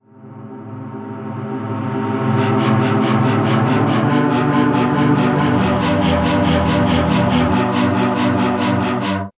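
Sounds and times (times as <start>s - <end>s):
reversed synth pads: 2.4s - 9.3s.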